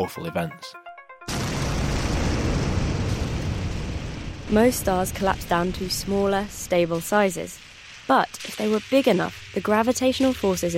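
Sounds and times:
speech: 0:00.0 - 0:00.8, 0:04.5 - 0:10.7
explosion sound effect for supernova: 0:01.3 - 0:08.1.

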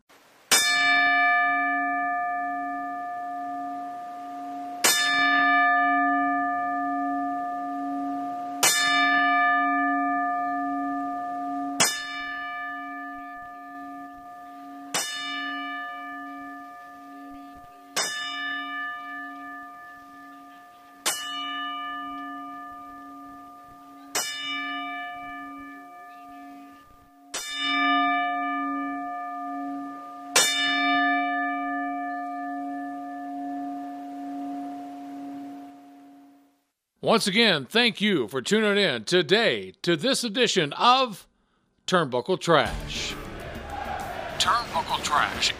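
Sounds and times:
bell tolling: 0:00.5 - 0:35.6
speech: 0:37.1 - 0:41.3, 0:41.9 - 0:43.2, 0:44.4 - 0:45.5.

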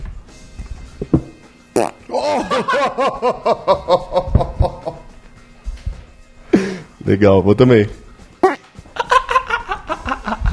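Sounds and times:
fart: 0:01.8 - 0:02.0
speech: 0:01.8 - 0:04.2, 0:07.1 - 0:08.0
laughter: 0:02.1 - 0:05.0, 0:09.0 - 0:10.5.

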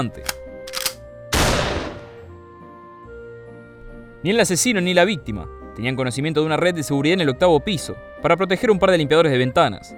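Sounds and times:
speech: 0:00.0 - 0:00.4, 0:04.2 - 0:09.9
shotgun blast fired through a ninth-floor window: 0:01.3 - 0:02.3.

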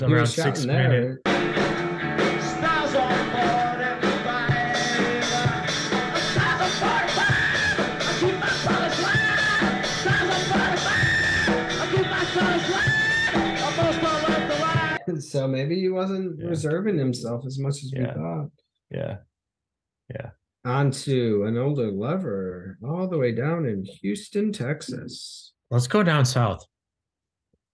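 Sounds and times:
speech: 0:00.0 - 0:01.5, 0:15.3 - 0:19.3, 0:20.1 - 0:26.7
loud dense rock music from a band: 0:01.2 - 0:15.0
singer screaming: 0:06.3 - 0:15.0.

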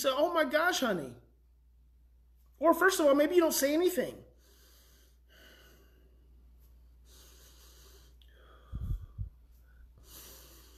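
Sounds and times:
speech: 0:00.0 - 0:01.2, 0:02.6 - 0:04.3
deep audible breathing: 0:04.3 - 0:10.7.

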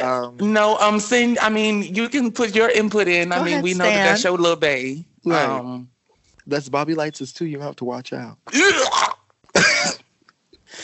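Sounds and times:
speech: 0:00.0 - 0:09.1
person coughing: 0:08.5 - 0:10.0
person clearing throat: 0:08.5 - 0:10.1.

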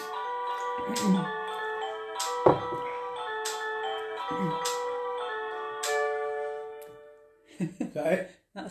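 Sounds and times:
cuckoo clock striking with tinkling mechanical melody: 0:00.0 - 0:07.4
speech: 0:00.8 - 0:01.4, 0:07.9 - 0:08.7
hollow knocks: 0:02.5 - 0:02.9.

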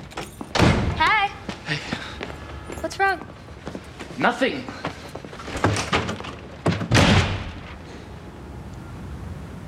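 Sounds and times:
door slamming shut with a heavy booming thud: 0:00.5 - 0:01.1, 0:05.5 - 0:07.8
sharper knocks and bangs: 0:00.5 - 0:01.1, 0:05.6 - 0:07.8
speech: 0:03.0 - 0:03.3, 0:04.2 - 0:04.9.

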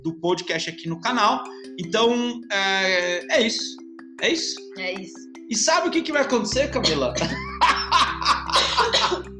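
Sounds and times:
speech: 0:00.0 - 0:07.7
laughter: 0:06.6 - 0:09.2
harsh coughing fit: 0:06.8 - 0:09.3.

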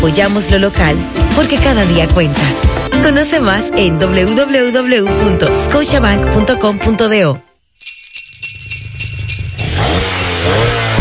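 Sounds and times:
speech: 0:00.0 - 0:07.5
engine starting and revving: 0:09.6 - 0:10.9.

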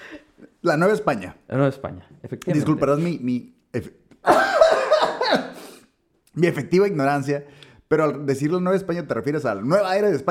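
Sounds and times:
speech: 0:00.6 - 0:04.6, 0:06.4 - 0:10.2
man coughing: 0:04.3 - 0:05.8.

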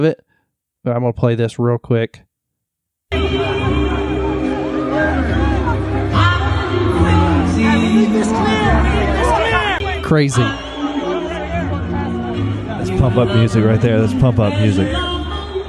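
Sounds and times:
speech: 0:00.0 - 0:00.2, 0:00.8 - 0:02.3, 0:10.1 - 0:10.6, 0:12.4 - 0:15.1
crowd cheering: 0:03.1 - 0:14.3
crowd babble: 0:03.1 - 0:15.6.

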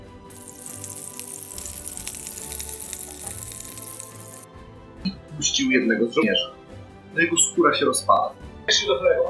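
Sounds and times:
lantern oil sizzling and crackling on a burning slime: 0:00.3 - 0:04.5
speech: 0:05.0 - 0:06.5, 0:07.1 - 0:09.2.

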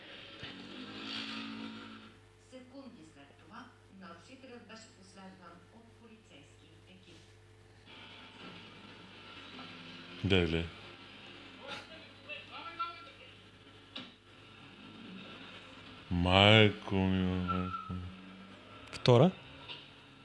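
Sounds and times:
scooter small motor engine passing by: 0:00.0 - 0:02.2, 0:08.0 - 0:11.6, 0:13.6 - 0:16.2, 0:17.4 - 0:20.2
speech: 0:10.2 - 0:10.8, 0:16.3 - 0:17.6, 0:19.1 - 0:19.4.

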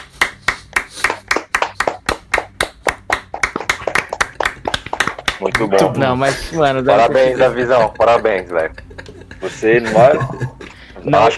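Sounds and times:
small group clapping hands in applause: 0:00.0 - 0:06.0
speech: 0:05.4 - 0:08.8, 0:09.4 - 0:11.3
laughter: 0:05.7 - 0:11.0.

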